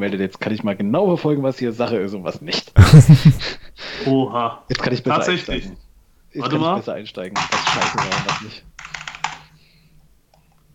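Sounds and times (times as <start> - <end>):
speech: 0.0 - 8.7
faint hum: 0.0 - 10.7
laughter: 2.8 - 3.6
typing on a loud mechanical keyboard: 7.3 - 9.5.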